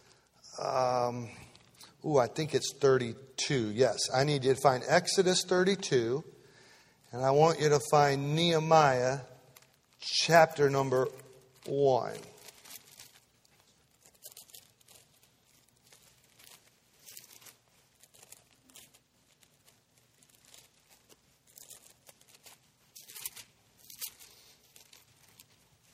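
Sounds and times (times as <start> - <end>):
speech: 0.6 - 1.4, 2.0 - 6.4, 7.1 - 9.3, 10.0 - 12.3
many thin Bible pages being turned: 8.4 - 25.9.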